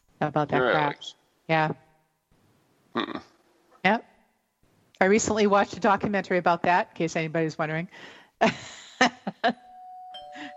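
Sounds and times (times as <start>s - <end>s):
speech: 0.2s - 1.8s, 3.0s - 4.1s, 5.0s - 9.6s
doorbell chime: 9.6s - 10.5s.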